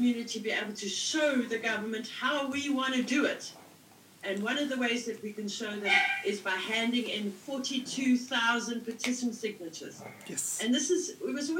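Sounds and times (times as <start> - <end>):
speech: 0.0 - 3.6, 4.2 - 11.5
dog barking: 5.8 - 6.3.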